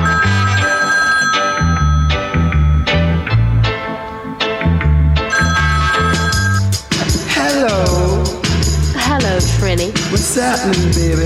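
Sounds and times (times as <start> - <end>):
telephone ringing: 0.0 - 3.1, 5.3 - 6.9
thumping bass-heavy music beat: 1.6 - 11.2
speech: 10.4 - 11.2.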